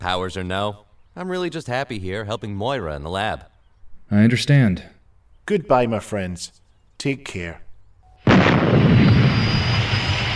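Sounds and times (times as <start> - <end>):
speech: 0.0 - 3.5, 4.1 - 7.6
shrill jet aircraft scream over an island: 8.3 - 10.3.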